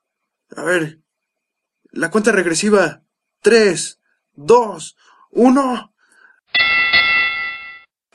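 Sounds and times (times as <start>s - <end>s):
speech: 0.6s - 1.0s, 2.0s - 5.9s
starting bell ringing to open a battle: 6.5s - 7.9s.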